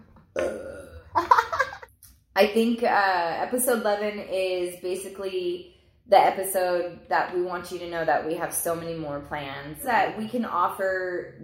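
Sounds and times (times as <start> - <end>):
long loud rumbling burp: 0.3 - 1.2
speech: 2.4 - 11.4.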